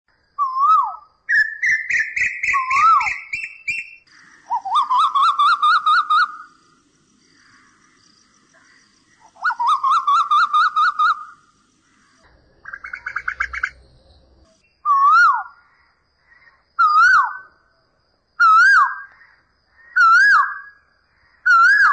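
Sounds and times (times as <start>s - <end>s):
Asian koel calling: 0.4s - 15.7s, 18.4s - 21.9s.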